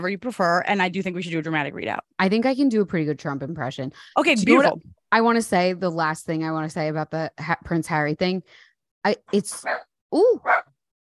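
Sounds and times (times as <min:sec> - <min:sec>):
speech: 0:00.0 - 0:10.7
dog barking at someone at the door: 0:09.6 - 0:10.7
dog yelping: 0:10.4 - 0:10.7.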